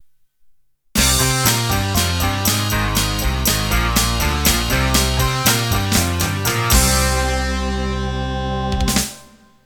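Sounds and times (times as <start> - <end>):
rock music ending: 1.0 - 9.6.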